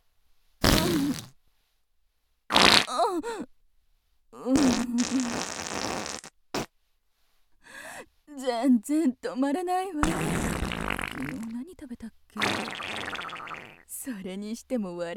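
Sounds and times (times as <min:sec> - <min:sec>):
farts from a middle-aged woman: 0:00.6 - 0:01.4, 0:02.5 - 0:02.9, 0:04.6 - 0:06.7, 0:10.0 - 0:11.5, 0:12.4 - 0:13.8
speech: 0:03.2 - 0:03.5, 0:04.4 - 0:05.6, 0:08.4 - 0:10.6, 0:11.2 - 0:12.9, 0:14.0 - 0:15.1.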